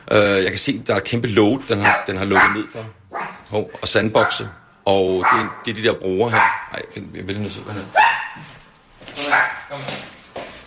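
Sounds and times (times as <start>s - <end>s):
speech: 0.1s - 8.6s, 9.3s - 10.0s
dog in an apartment on Amager barking and whimpering: 1.8s - 3.5s, 5.2s - 5.7s, 6.3s - 6.8s, 7.9s - 8.4s, 9.2s - 9.7s.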